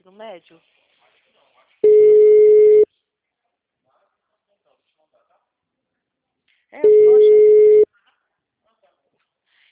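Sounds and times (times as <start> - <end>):
speech: 0.2 - 0.8
telephone call tone from a call being placed: 1.8 - 2.8, 6.8 - 7.9.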